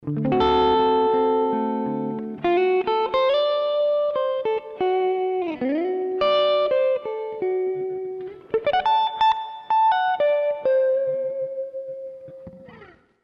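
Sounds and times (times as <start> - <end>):
Fender tweed amplifier: 0.0 - 13.2.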